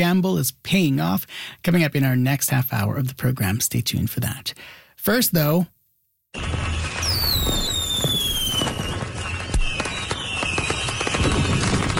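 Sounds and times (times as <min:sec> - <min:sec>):
speech: 0:00.0 - 0:05.7, 0:06.3 - 0:06.9
fireworks crackling and popping in the summer sky over Manitoba: 0:06.4 - 0:11.9.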